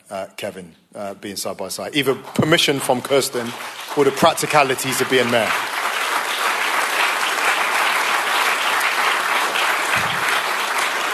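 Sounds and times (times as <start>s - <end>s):
speech: 0.1s - 5.8s
large audience clapping: 2.0s - 11.1s.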